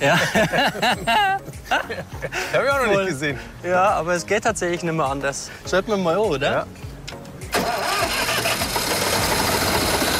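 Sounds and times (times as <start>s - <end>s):
laughter: 0.0s - 2.5s
speech: 0.0s - 6.9s
engine started with its ignition key cranking and catching: 7.5s - 10.1s.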